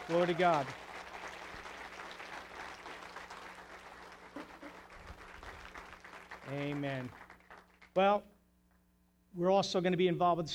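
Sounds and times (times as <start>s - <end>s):
sustained applause from a large audience: 0.0s - 7.9s
speech: 0.1s - 0.8s, 6.5s - 7.2s, 8.0s - 8.3s, 9.3s - 10.5s.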